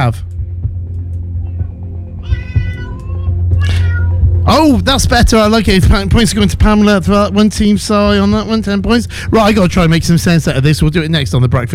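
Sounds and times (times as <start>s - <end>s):
speech: 0.0s - 0.4s, 4.5s - 11.7s
person imitating a cat meowing: 2.2s - 4.2s.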